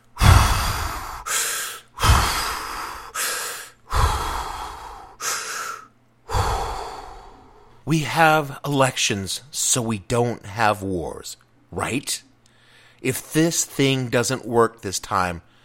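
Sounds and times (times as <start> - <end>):
deep breaths taken slowly: 0.0 - 7.8, 12.4 - 13.0
speech: 7.9 - 12.3, 13.0 - 15.5.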